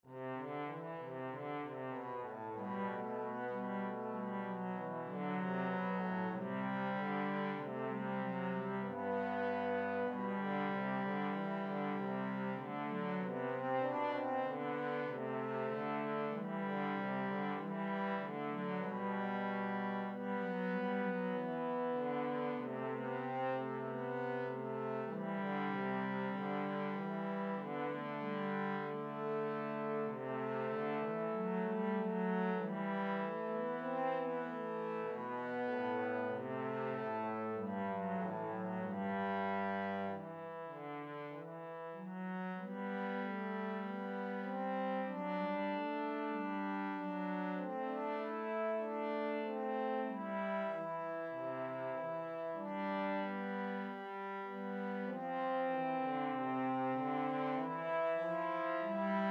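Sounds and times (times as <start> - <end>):
polyphonic trombone: 0.2 - 59.2.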